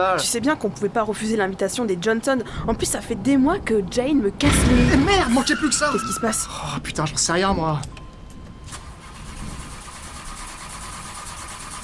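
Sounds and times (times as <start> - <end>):
speech: 0.0 - 8.0
car engine cranking but failing to start: 4.4 - 6.4.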